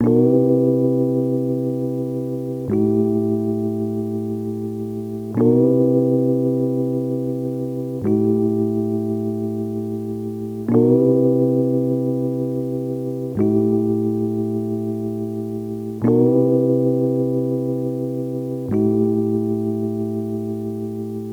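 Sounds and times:
electric piano in A minor at 90 BPM: 0.0s - 21.3s.

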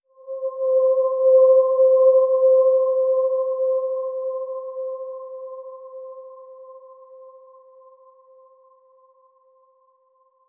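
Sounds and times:
eerie synth pad in C: 0.1s - 6.7s.

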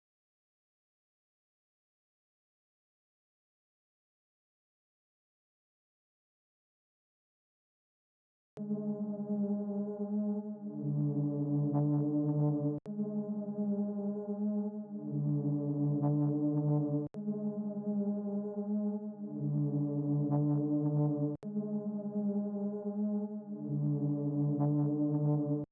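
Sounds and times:
brass trap melody loop in C sharp minor: 8.7s - 25.6s.

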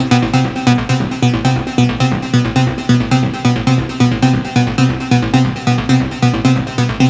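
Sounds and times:
techno synth loop in F at 135: 0.0s - 7.0s.

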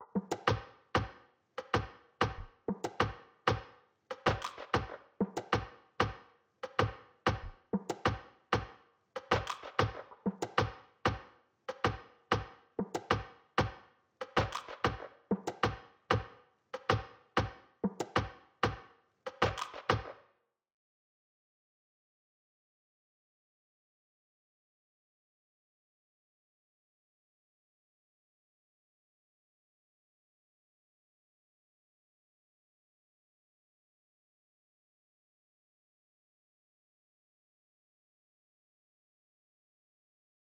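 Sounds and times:
Latin percussion: 0.0s - 20.2s.

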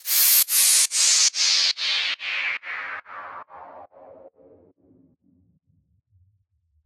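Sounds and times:
dubstep white noise down effect: 0.0s - 4.0s.

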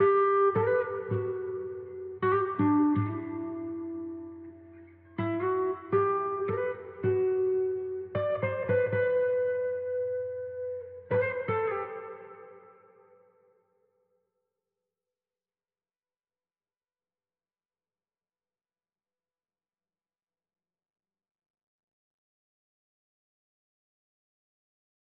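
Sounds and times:
guitar loop in E minor: 0.0s - 13.0s.

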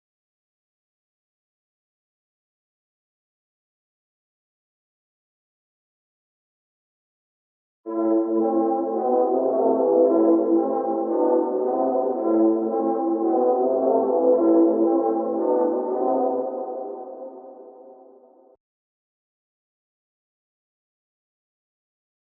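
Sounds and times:
trumpet loop in A minor: 7.9s - 17.7s.

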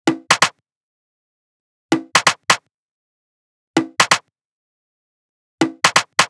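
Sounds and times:
techno drum kit percussion at 130 bpm: 0.1s - 0.6s, 1.9s - 2.7s, 3.8s - 4.3s, 5.6s - 6.2s.

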